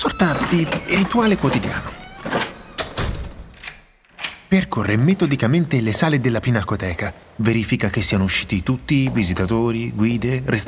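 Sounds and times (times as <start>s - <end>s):
speech: 0.0s - 2.0s, 4.5s - 10.6s
heavy door creaking: 0.0s - 4.5s
heavy door swinging and thudding shut: 0.4s - 3.6s.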